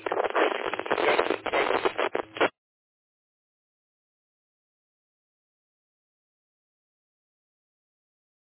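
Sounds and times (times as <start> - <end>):
harsh crackly radio static over a ham radio repeater transmission: 0.0 - 2.6.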